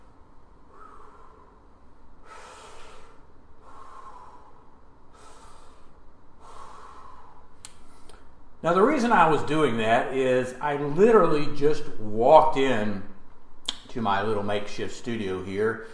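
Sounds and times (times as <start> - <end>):
slow deep calming breaths: 0.0 - 8.4, 15.8 - 15.9
speech: 8.6 - 13.1, 14.0 - 15.9.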